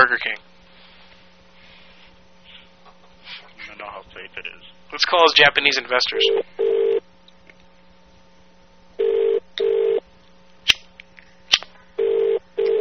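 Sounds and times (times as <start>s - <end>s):
speech: 0.1s - 0.5s, 3.7s - 6.8s
telephone ringback tone over the line: 6.2s - 7.0s, 9.0s - 10.0s, 12.0s - 12.7s.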